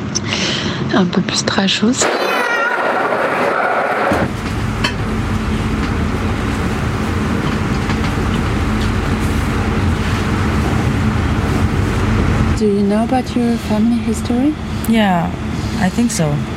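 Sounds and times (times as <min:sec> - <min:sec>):
low rumble inside a moving train carriage travelling to Austria: 0:00.7 - 0:16.5
speech: 0:00.9 - 0:02.4, 0:12.6 - 0:16.5.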